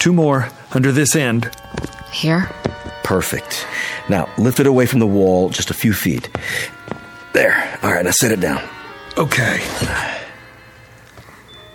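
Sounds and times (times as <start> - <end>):
speech: 0.0 - 10.2
girl breathing: 3.6 - 4.1.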